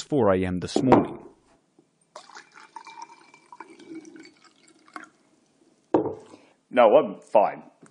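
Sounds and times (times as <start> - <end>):
speech: 0.1 - 1.3, 6.7 - 7.7
jug knock as it is set down: 0.8 - 1.3, 6.0 - 6.2
milk poured from a jug into a glass: 2.1 - 5.4, 6.0 - 6.5.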